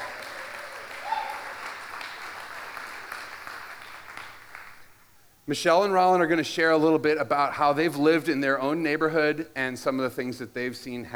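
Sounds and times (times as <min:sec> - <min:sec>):
audience applauding: 0:00.0 - 0:05.0
speech: 0:05.5 - 0:11.1.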